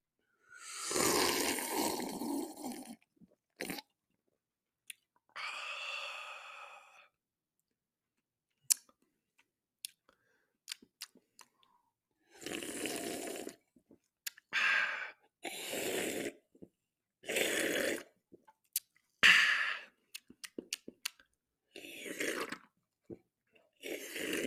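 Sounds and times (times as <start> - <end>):
slurping gulps of key lime sparkling water from a can: 0.5 - 4.0, 10.7 - 24.4
breaths: 5.3 - 7.2, 10.1 - 10.6, 14.5 - 15.3, 19.2 - 20.0.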